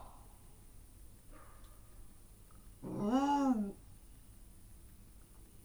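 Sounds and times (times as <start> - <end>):
jungle cat calling at Miskolc zoo: 2.8 - 3.8.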